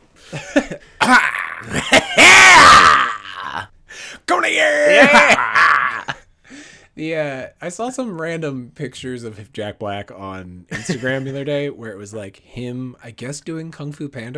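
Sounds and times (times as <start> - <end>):
speech: 0.3 - 2.0, 7.0 - 14.3
loud cough: 0.3 - 3.6, 4.9 - 6.2.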